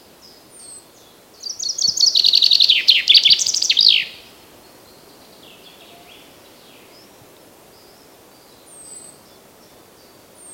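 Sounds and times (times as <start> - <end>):
common chaffinch Fringilla coelebs song with fast descending chipping notes: 0.0 - 10.5.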